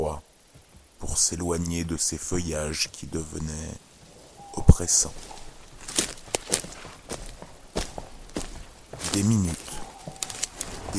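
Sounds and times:
speech: 1.0 - 3.9, 4.6 - 5.4, 9.2 - 9.7
footsteps of a hunter walking through a forest: 4.0 - 10.9.

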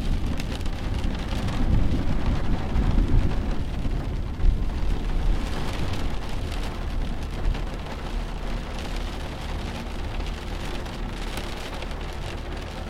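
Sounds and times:
rolling thunder of an approaching storm: 0.0 - 6.5
steady rain: 0.0 - 12.8.

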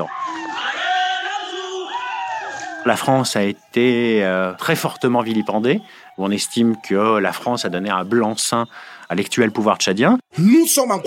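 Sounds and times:
large protest crowd shouting and chanting in a street in N'Djamena Chad: 0.0 - 11.0
speech: 2.8 - 11.0.

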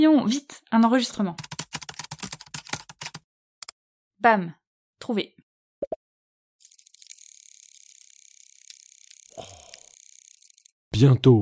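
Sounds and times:
speech: 0.0 - 1.6, 4.2 - 5.4, 11.0 - 11.4
winged mutant field crickets purring buzz: 6.6 - 10.7.

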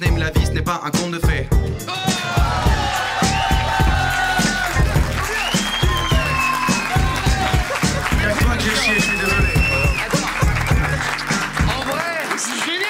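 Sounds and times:
speech: 0.0 - 1.5
crowd clapping: 2.4 - 12.8
laughter: 2.5 - 12.4
whistles from the crowd: 5.3 - 7.2, 8.6 - 10.9.

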